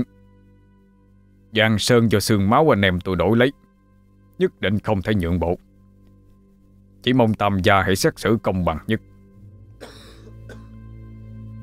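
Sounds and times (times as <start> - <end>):
low steady hum: 0.0 - 11.6
speech: 1.5 - 3.6, 4.4 - 5.7, 7.0 - 9.1
old man coughing rough throaty coughs: 9.8 - 10.8.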